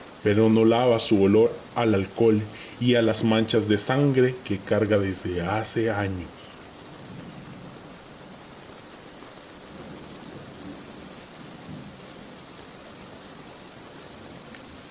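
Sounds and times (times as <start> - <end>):
heavy steady rain pouring down: 0.0 - 14.9
speech: 0.2 - 6.4
low rumbling swells of thunder: 7.0 - 8.5, 9.7 - 12.5.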